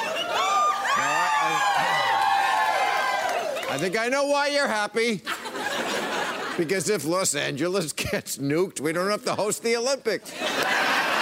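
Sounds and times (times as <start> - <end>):
studio audience cheering and whooping: 0.0 - 4.0
speech: 3.7 - 5.9, 6.6 - 10.9
laughter: 5.0 - 7.1, 10.2 - 11.1.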